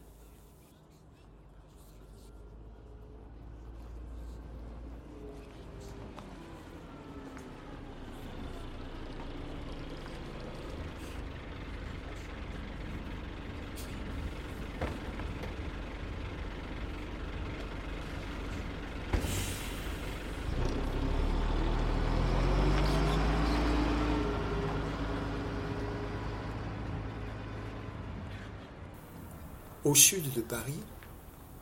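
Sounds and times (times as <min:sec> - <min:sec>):
city bus engine rumble: 0:00.0 - 0:31.5
city bus air brakes hissing: 0:19.1 - 0:20.4
speech: 0:29.9 - 0:30.9.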